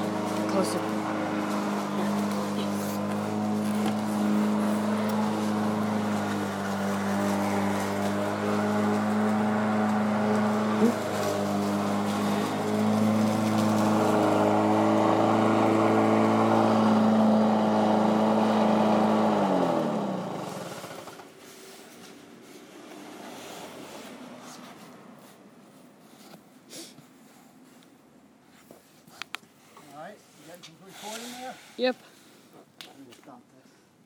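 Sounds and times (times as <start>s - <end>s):
lawnmower engine revving: 0.0s - 21.4s
speech: 0.6s - 1.0s, 31.8s - 32.0s.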